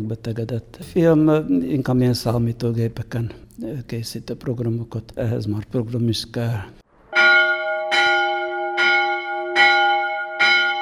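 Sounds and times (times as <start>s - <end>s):
speech: 0.0s - 6.8s
church bell tolling: 7.1s - 10.8s.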